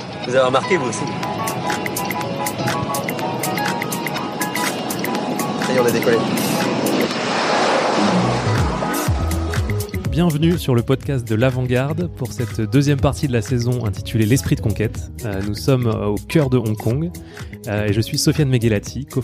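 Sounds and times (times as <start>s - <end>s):
airplane wheels rumbling on the runway: 0.0s - 10.2s
airplane engine roar rolling down the runway: 0.0s - 11.0s
speech: 0.3s - 1.9s, 5.7s - 6.7s, 10.2s - 19.2s.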